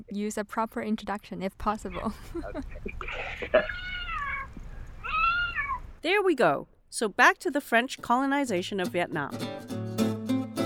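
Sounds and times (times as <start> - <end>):
speech: 0.0 - 4.0, 6.0 - 9.8
two cats meowing into a microphone waiting for dinner: 3.1 - 6.0.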